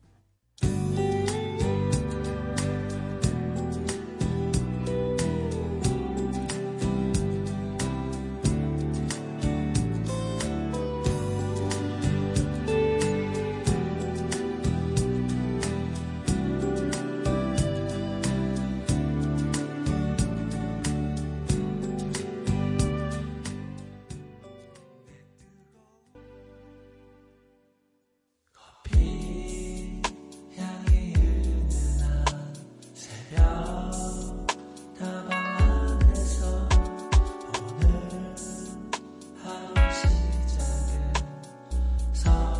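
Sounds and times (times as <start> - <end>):
Korean pop ballad with sung melody and band: 0.6 - 26.6, 28.6 - 42.5.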